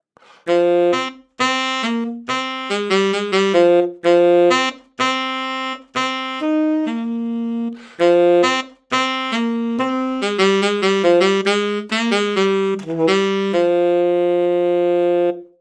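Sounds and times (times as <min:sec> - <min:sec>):
tenor saxophone: 0:00.2 - 0:15.6.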